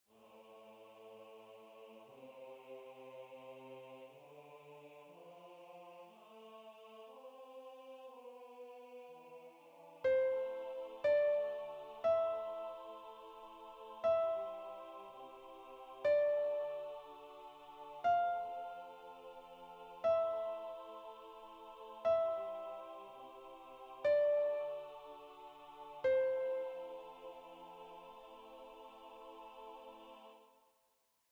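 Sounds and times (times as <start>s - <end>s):
soprano singing: 0.2s - 30.5s
piano: 9.9s - 30.0s.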